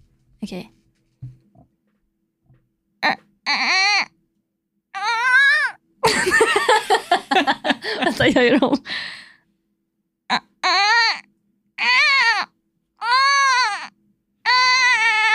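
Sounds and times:
speech: 0.4 - 0.8, 8.2 - 9.2
person imitating a crying newborn baby: 3.0 - 4.1, 5.0 - 5.8, 10.3 - 13.9, 14.5 - 15.3
laughter: 6.0 - 8.9.

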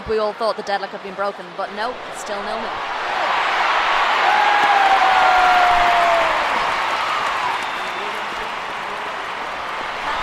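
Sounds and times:
speech: 0.1 - 3.0
large football stadium crowd cheering a penalty award: 0.2 - 10.2
whistle-like tone: 7.5 - 8.2.

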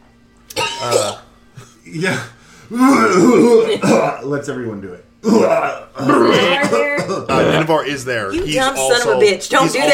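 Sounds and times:
person coughing and sputtering: 0.5 - 1.3, 2.0 - 4.2, 5.2 - 7.7
speech: 1.9 - 9.9.

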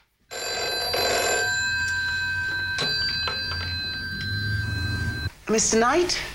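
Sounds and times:
old-fashioned telephone bell ringing: 0.3 - 5.3
speech: 5.5 - 6.3.

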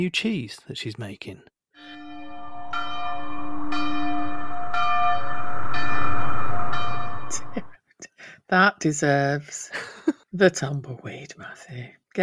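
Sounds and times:
speech: 0.0 - 2.0, 8.5 - 12.2
church bells ringing in a peal: 1.8 - 7.7.

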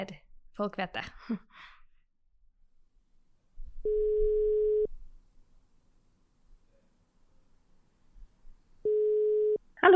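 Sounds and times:
speech: 0.0 - 1.7, 9.8 - 9.9
telephone ringback tone while placing a call: 3.8 - 4.9, 8.8 - 9.6.

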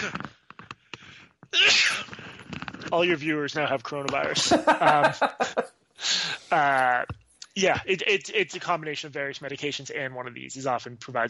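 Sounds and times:
person sneezing loudly after catching breaths: 1.6 - 2.2, 6.0 - 7.0
speech: 2.9 - 5.7, 6.5 - 11.2
laughter: 3.8 - 7.0.

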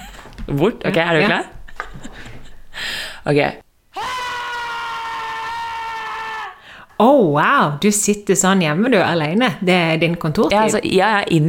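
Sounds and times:
speech: 0.5 - 2.3, 3.2 - 3.6, 7.0 - 11.4
person screaming high-pitched: 3.9 - 6.7.

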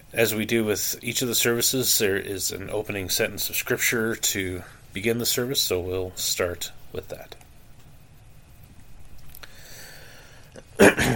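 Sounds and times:
speech: 0.1 - 7.4
faint breathing: 9.3 - 10.6
person leading an evening prayer service coughing: 10.8 - 11.1.

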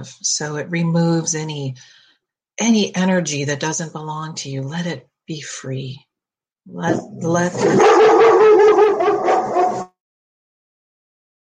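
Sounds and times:
speech: 0.0 - 2.0, 2.6 - 8.4
dogs barking with howling and whining: 7.6 - 9.9.

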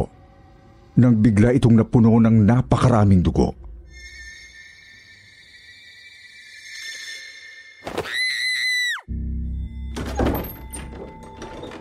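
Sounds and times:
speech: 1.0 - 3.6
girl screaming in fright: 7.9 - 9.1
burst of clattering noise: 9.9 - 11.7.

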